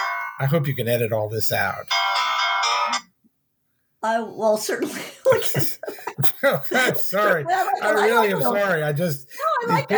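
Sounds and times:
mobile phone ringtone of stacked electronic tones: 0:00.0 - 0:00.4, 0:01.9 - 0:03.1
speech: 0:00.4 - 0:02.0, 0:04.0 - 0:09.9
laughter: 0:05.0 - 0:09.9.

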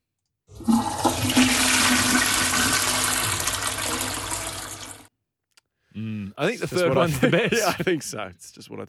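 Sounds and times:
toilet flushing: 0:00.5 - 0:05.1
laughter: 0:06.0 - 0:08.3
speech: 0:06.4 - 0:08.8.

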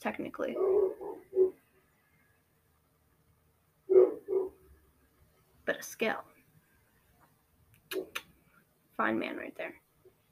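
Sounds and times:
speech: 0:00.0 - 0:01.3, 0:05.7 - 0:06.3, 0:09.0 - 0:09.8
dog barking: 0:00.6 - 0:01.6, 0:03.9 - 0:04.6.

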